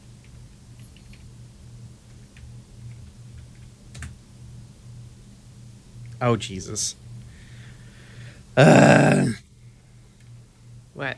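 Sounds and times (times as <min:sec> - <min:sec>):
typing on a computer keyboard during a video game session: 0:00.2 - 0:01.2, 0:02.4 - 0:04.2
speech: 0:06.2 - 0:07.1, 0:08.6 - 0:08.9.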